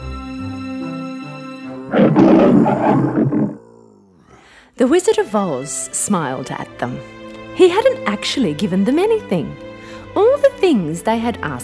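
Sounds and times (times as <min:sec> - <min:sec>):
soft sustained music: 0:00.0 - 0:01.9, 0:04.8 - 0:11.6
speech: 0:01.9 - 0:03.6, 0:04.8 - 0:11.6
lion roaring: 0:01.9 - 0:04.4.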